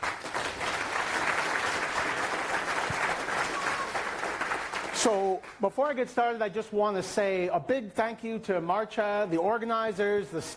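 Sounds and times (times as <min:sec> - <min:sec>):
audience applauding: 0:00.0 - 0:05.6
speech: 0:05.0 - 0:10.5.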